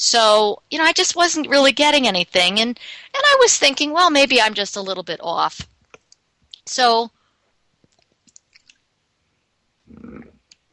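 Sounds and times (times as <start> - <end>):
speech: 0.0 - 5.7, 6.6 - 7.2
wet mouth clicks: 7.9 - 8.8
person sipping water: 9.9 - 10.5
throaty gulp: 9.9 - 10.5.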